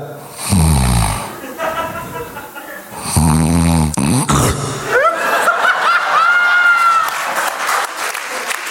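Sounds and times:
man's voice imitating loud rasping snoring: 0:00.0 - 0:05.0
crowd laughing: 0:01.3 - 0:03.0, 0:04.7 - 0:08.5
crowd clapping: 0:05.8 - 0:08.7.

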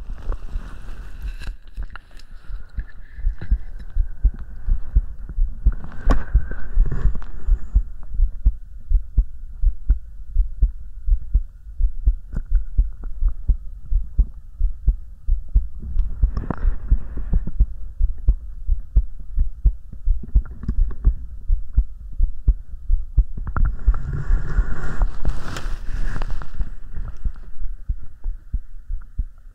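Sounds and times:
soft airy breaths: 0:00.0 - 0:09.3, 0:11.4 - 0:19.0, 0:23.6 - 0:29.4
faint hum: 0:00.0 - 0:29.5
close steady heartbeat thumping: 0:03.2 - 0:24.0, 0:26.7 - 0:29.5.

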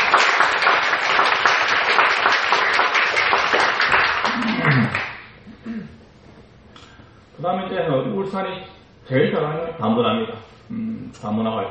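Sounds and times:
crowd applause: 0:00.0 - 0:05.3
speech: 0:07.4 - 0:11.6.

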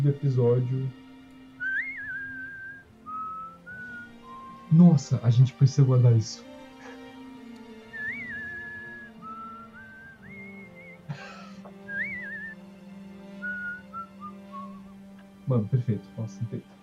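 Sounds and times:
speech: 0:00.0 - 0:01.0, 0:04.7 - 0:06.5, 0:15.5 - 0:16.8
person whistling a western-style theme melody: 0:01.6 - 0:04.9, 0:07.9 - 0:12.6, 0:13.4 - 0:14.9.

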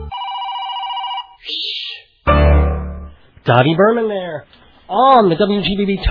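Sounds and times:
electronic phone ringing: 0:00.1 - 0:01.5
burst of rich sound: 0:01.4 - 0:03.3
speech: 0:03.5 - 0:06.0.

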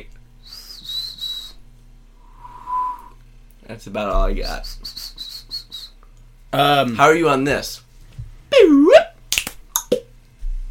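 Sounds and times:
person whistling: 0:00.4 - 0:01.6, 0:02.2 - 0:03.2, 0:04.6 - 0:06.0
speech: 0:03.7 - 0:05.0, 0:06.5 - 0:07.8.

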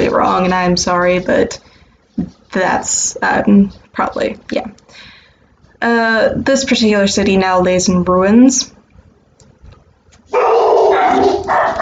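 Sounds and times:
speech: 0:00.4 - 0:05.1, 0:05.8 - 0:08.7
dogs barking and yelping: 0:10.3 - 0:11.8.

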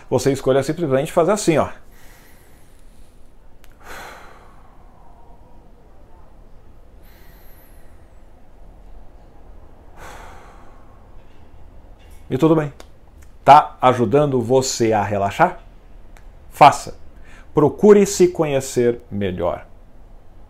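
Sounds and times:
speech: 0:00.1 - 0:01.9, 0:12.3 - 0:12.9, 0:13.5 - 0:15.6, 0:16.6 - 0:17.0, 0:17.6 - 0:19.7
person taking slow relaxing breaths: 0:01.8 - 0:05.8, 0:06.7 - 0:11.6, 0:17.1 - 0:17.6.

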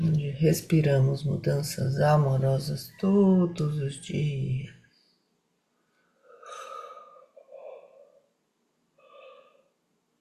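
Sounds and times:
speech: 0:00.4 - 0:04.8
deep breaths with soft voiced sighs: 0:04.8 - 0:08.2, 0:09.0 - 0:09.8.

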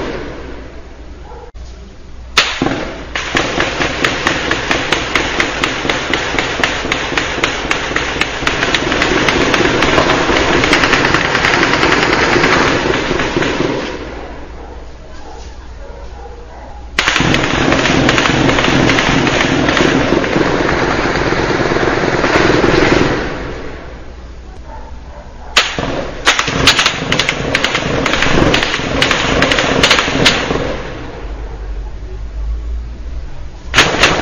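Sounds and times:
gunfire volleys in a hillside neighborhood: 0:02.4 - 0:14.5, 0:17.0 - 0:24.0, 0:25.6 - 0:31.4, 0:33.7 - 0:34.1
faint voices: 0:14.1 - 0:17.0, 0:31.4 - 0:33.7.

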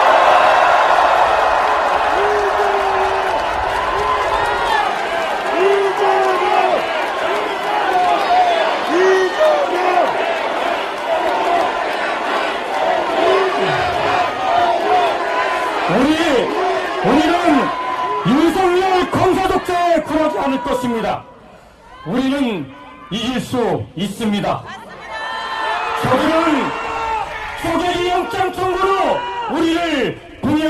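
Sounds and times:
large rally crowd applauding: 0:00.0 - 0:19.6
large rally crowd cheering and shouting: 0:00.0 - 0:30.6
speech: 0:24.0 - 0:24.8.

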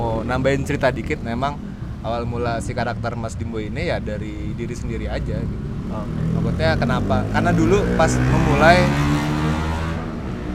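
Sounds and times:
speech: 0:00.3 - 0:09.6
motorcycle engine revving outside: 0:05.8 - 0:10.5.

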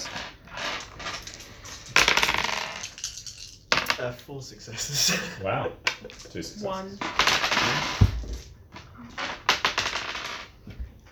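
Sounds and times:
several dice clattering across a hard tabletop: 0:00.0 - 0:04.1, 0:05.9 - 0:10.7
speech: 0:04.0 - 0:08.1
laughter: 0:04.6 - 0:08.0.

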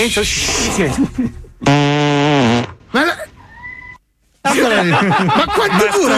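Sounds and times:
speech: 0:00.0 - 0:02.0, 0:04.8 - 0:06.1
long loud fart with tonal whining pitch: 0:01.6 - 0:02.8
laughter: 0:04.4 - 0:06.1.

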